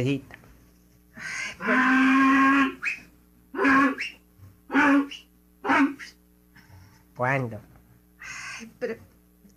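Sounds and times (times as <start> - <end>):
speech: 0.0 - 0.4, 1.2 - 2.2, 7.2 - 7.7, 8.8 - 9.1
mule braying: 1.2 - 6.2.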